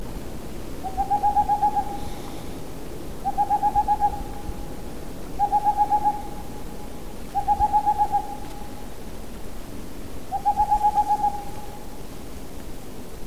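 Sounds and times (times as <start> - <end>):
boreal owl: 0.8 - 2.5, 3.2 - 4.5, 5.4 - 6.5, 7.3 - 8.8, 10.3 - 11.8.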